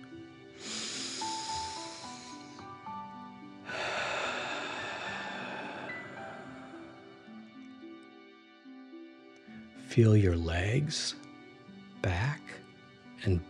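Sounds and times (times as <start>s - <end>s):
soft music: 0.0s - 13.4s
strong forceful hissing exhale: 0.6s - 3.0s, 3.6s - 7.1s
long deep inhale through the nose: 0.6s - 7.2s
speech: 10.0s - 11.2s, 13.2s - 13.4s.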